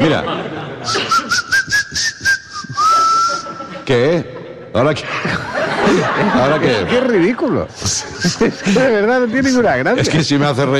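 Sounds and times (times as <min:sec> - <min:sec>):
laughter: 0:00.0 - 0:01.8, 0:02.6 - 0:10.4
speech: 0:00.1 - 0:01.4, 0:03.9 - 0:10.7
person whistling through their teeth: 0:00.8 - 0:03.6.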